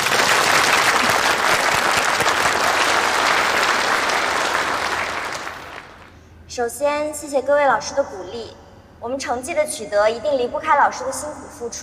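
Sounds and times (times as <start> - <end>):
sizable crowd applauding a student team: 0.0 - 6.1
speech: 6.6 - 11.8.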